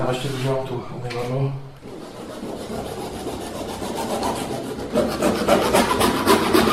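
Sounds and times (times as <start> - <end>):
speech: 0.1 - 1.7
hand saw cutting a pipe to length: 1.9 - 6.7.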